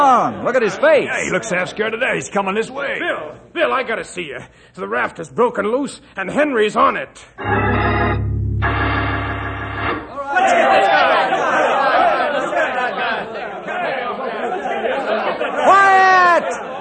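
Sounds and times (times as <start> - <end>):
speech: 0.2 - 8.0
low droning tone: 7.4 - 10.1
agitated crowd of men shouting and clamoring: 10.2 - 13.0
laughter: 10.2 - 16.8.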